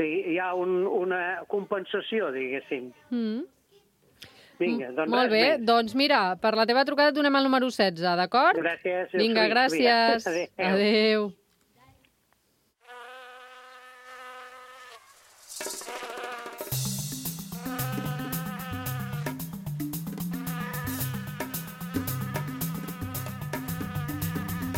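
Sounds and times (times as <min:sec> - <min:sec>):
speech: 0:00.0 - 0:03.6, 0:04.2 - 0:11.4
mosquito buzzing: 0:12.8 - 0:24.7
loud rhythmic music with a pounding beat: 0:15.6 - 0:24.7.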